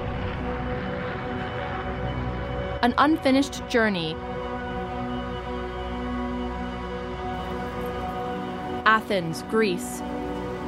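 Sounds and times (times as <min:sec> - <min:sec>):
airplane engines roaring: 0:00.0 - 0:10.6
speech: 0:02.8 - 0:04.3, 0:08.9 - 0:10.2.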